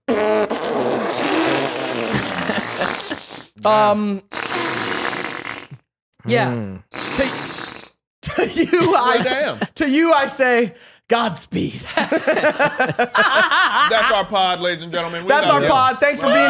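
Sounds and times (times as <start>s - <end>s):
person doing a long imitated fart noise: 0.0s - 3.6s, 4.3s - 5.9s, 6.8s - 8.0s
laughter: 2.1s - 3.2s, 8.2s - 10.0s, 11.7s - 16.4s
speech: 3.6s - 4.3s, 6.2s - 7.4s, 8.3s - 16.4s.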